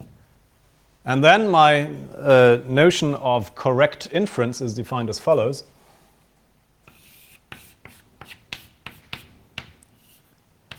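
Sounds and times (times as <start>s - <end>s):
speech: 1.0s - 5.7s
handwriting by pen or chalk: 6.9s - 10.7s.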